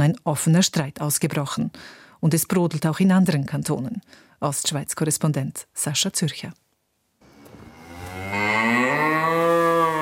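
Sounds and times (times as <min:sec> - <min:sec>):
speech: 0:00.0 - 0:06.6
dairy cow lowing in a stable: 0:07.3 - 0:10.0.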